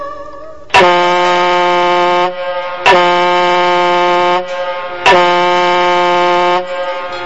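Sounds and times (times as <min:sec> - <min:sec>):
loud brassy train or ship horn blasts: 0:00.8 - 0:07.2.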